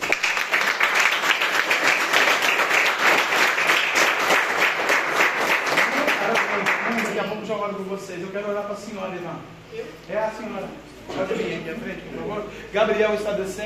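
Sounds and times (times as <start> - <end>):
large group applauding loudly: 0.0 - 7.2
speech: 7.7 - 13.6.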